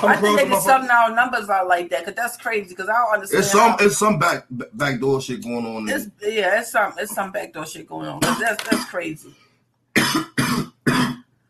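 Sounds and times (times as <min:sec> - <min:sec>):
laughter: 0:00.0 - 0:01.0, 0:03.3 - 0:06.0
speech: 0:00.0 - 0:09.4
person coughing: 0:03.4 - 0:03.9, 0:08.2 - 0:09.1, 0:10.0 - 0:11.2.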